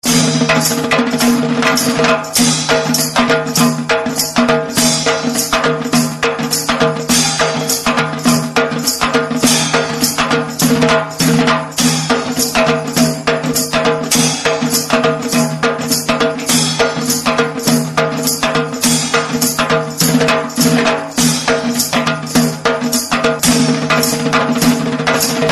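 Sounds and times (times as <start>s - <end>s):
Marathi halgi drum tone: 0.0s - 25.4s.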